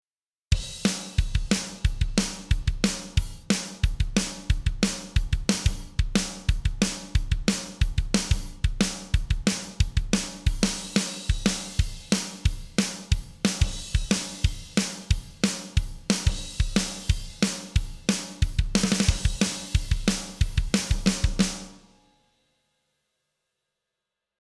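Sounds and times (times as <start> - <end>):
drums without compression: 0.5 - 22.1.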